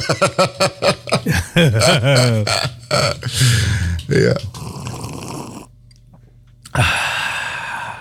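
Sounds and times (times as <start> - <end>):
speech: 0.0 - 4.5, 6.8 - 7.0
throaty sounds: 1.8 - 5.8, 6.6 - 7.9
long slurp of hot coffee: 4.5 - 5.7.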